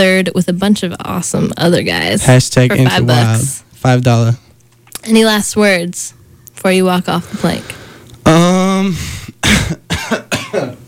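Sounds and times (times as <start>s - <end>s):
speech: 0.0s - 4.4s, 5.0s - 10.8s
sustained voiced groan: 8.2s - 9.3s
harsh coughs: 9.3s - 10.8s.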